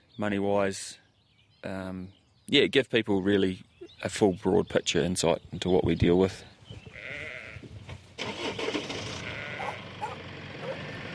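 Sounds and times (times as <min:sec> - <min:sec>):
speech: 0:00.2 - 0:01.0, 0:01.6 - 0:06.5
lambs bleating in a converted implement shed on a farm: 0:06.9 - 0:07.7, 0:09.1 - 0:10.1.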